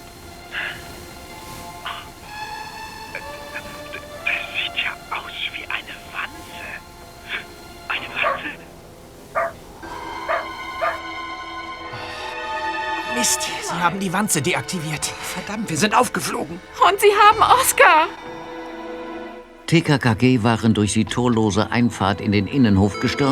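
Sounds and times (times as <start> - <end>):
steady rustling background: 0.0 - 11.1
dog barking in short uneven bursts: 7.3 - 8.7, 9.3 - 11.0
speech: 13.3 - 18.3, 19.7 - 23.3.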